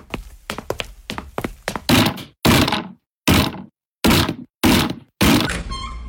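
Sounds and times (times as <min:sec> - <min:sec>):
door being battered in by force with heavy wooden blows: 0:01.9 - 0:05.6.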